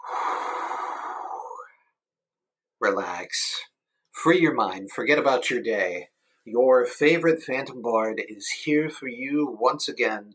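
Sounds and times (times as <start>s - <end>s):
deep breath in and out: 0.0s - 1.9s
speech: 2.8s - 10.3s.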